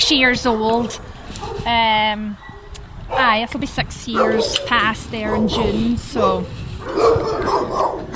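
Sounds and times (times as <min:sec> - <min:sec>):
bigger dogs barking excitedly in a dog hotel: 0:00.1 - 0:01.7, 0:04.1 - 0:08.1
speech: 0:00.1 - 0:02.5, 0:03.1 - 0:08.0
kennel noise: 0:00.4 - 0:01.8, 0:02.4 - 0:03.4, 0:04.2 - 0:08.1.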